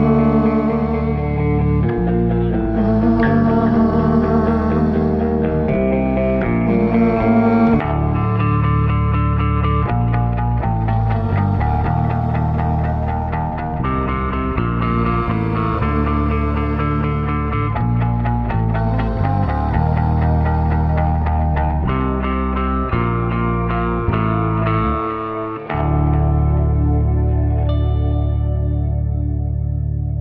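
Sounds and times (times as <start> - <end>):
person singing sadly: 0.0 - 9.4, 10.6 - 28.6
sad looped guitar playing: 0.0 - 30.1.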